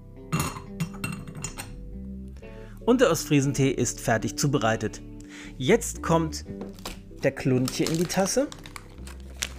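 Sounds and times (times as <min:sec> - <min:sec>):
lid put on a glass jar holding an East Frisian tea filter: 0:00.4 - 0:01.8
speech: 0:02.8 - 0:08.6.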